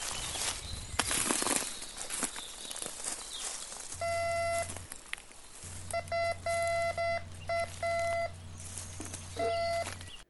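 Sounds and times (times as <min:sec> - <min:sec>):
footsteps crunching through a forest floor: 0:00.0 - 0:10.2
low hum: 0:03.9 - 0:10.2
metal detector beeping: 0:04.0 - 0:05.0, 0:05.6 - 0:10.2.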